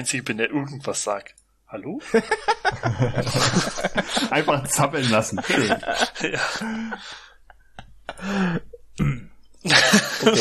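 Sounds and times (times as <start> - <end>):
speech: 0.0 - 7.3, 8.2 - 10.3
laughter: 2.0 - 8.8, 9.7 - 10.3
subdued restrained throat clearing: 9.0 - 9.4.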